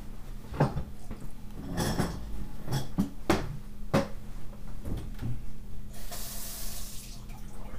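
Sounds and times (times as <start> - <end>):
knocks and clatters at a sink: 0.5 - 0.9, 1.6 - 4.2
tap water gushing into a sink basin to flush the pipe: 5.9 - 7.7.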